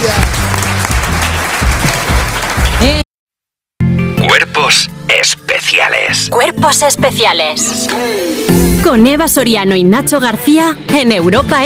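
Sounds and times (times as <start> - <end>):
audience applause on a radio comedy show: 0.0 - 3.0
speech: 4.8 - 11.6.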